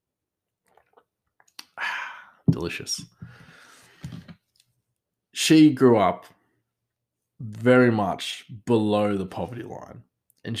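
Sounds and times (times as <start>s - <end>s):
person sipping hot coffee: 0.7s - 2.3s
speech: 2.6s - 3.4s, 5.5s - 6.4s, 7.4s - 10.5s.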